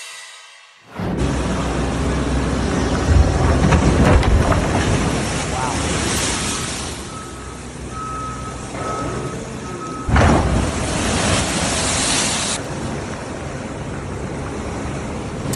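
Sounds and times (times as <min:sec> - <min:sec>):
big ocean wave crashing on the west coast of the U.S.: 0:00.0 - 0:09.3, 0:10.0 - 0:13.2
steady surf: 0:00.0 - 0:15.5
wind: 0:00.0 - 0:15.5
faint intermittent beeping: 0:07.0 - 0:10.2.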